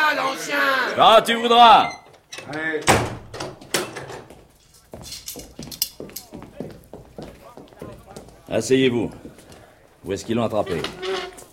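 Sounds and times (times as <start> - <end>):
speech: 0.4 - 3.2, 8.5 - 9.2, 10.0 - 11.0
door pushed shut with sharp wooden thud: 1.9 - 4.3
footsteps: 3.5 - 11.5.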